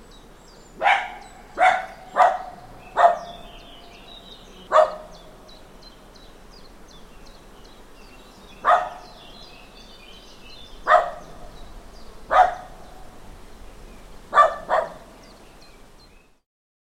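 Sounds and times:
dog barking in a small farmyard: 0.8s - 3.5s, 4.7s - 5.2s, 8.6s - 9.2s, 10.8s - 11.5s, 12.3s - 12.9s, 14.3s - 15.1s.

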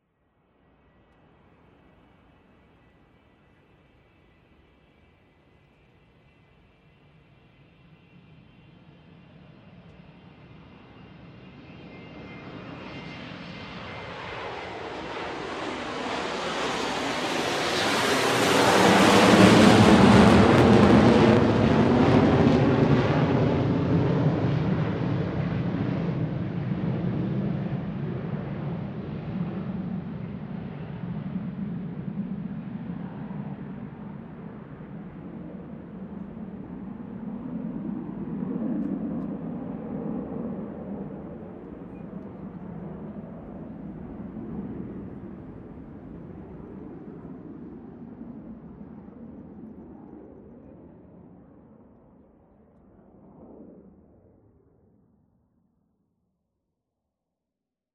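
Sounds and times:
jet taking off: 9.2s - 47.8s.

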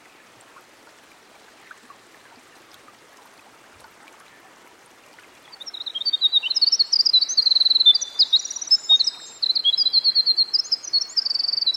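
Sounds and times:
Winter wren singing by a stream: 5.6s - 11.7s.

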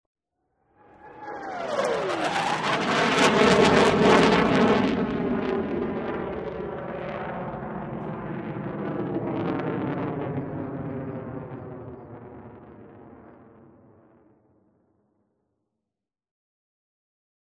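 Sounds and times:
F18 jet fly-by: 0.6s - 14.3s.

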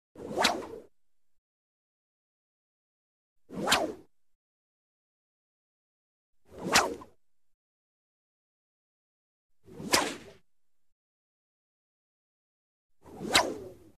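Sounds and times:
circular whip swish: 0.2s - 0.9s, 3.5s - 4.1s, 6.5s - 7.2s, 9.6s - 10.4s, 13.0s - 13.9s.

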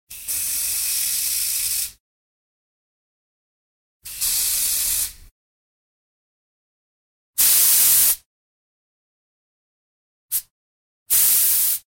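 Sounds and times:
aerosol spray: 0.1s - 2.0s, 4.1s - 5.2s, 7.4s - 8.2s, 11.1s - 11.9s.

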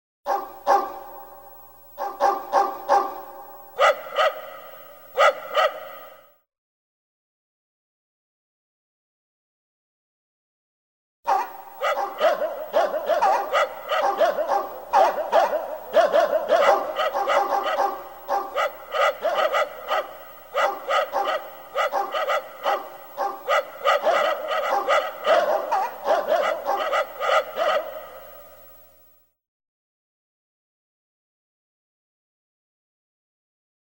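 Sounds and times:
different dogs barking: 0.3s - 1.3s, 2.0s - 6.2s, 11.3s - 28.7s.

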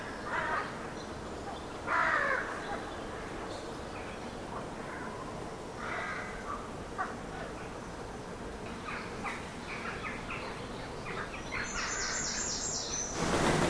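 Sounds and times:
background hiss: 0.0s - 13.6s
rooks cawing from trees: 1.9s - 2.6s, 5.8s - 7.5s.

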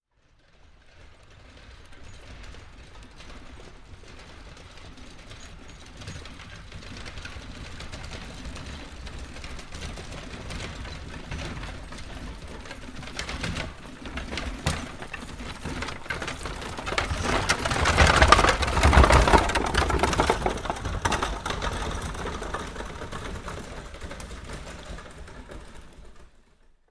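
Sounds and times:
horse-drawn carriage passing: 0.3s - 26.8s.

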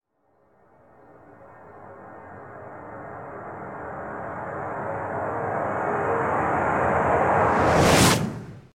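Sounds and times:
reverse stinger tonal synth whoosh: 1.8s - 8.7s.

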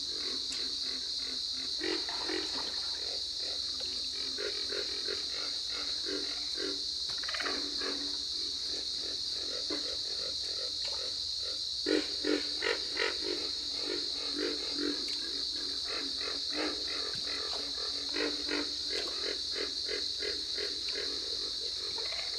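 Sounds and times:
pig frog chorus grunting: 0.0s - 22.3s.

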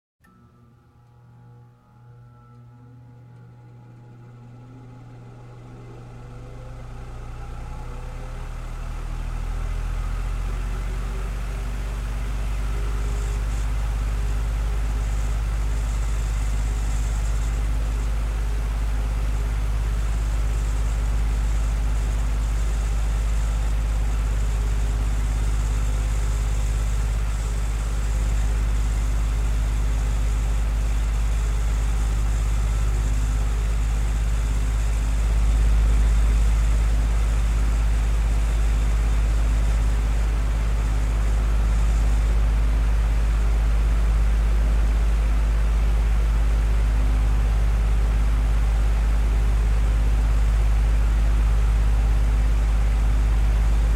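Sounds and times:
household electric fan turning on and off: 0.2s - 53.9s.

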